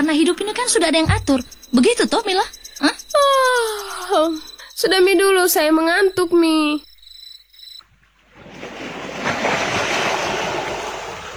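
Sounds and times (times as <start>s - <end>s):
speech: 0.0s - 6.9s
waves breaking on a beach: 8.3s - 11.3s.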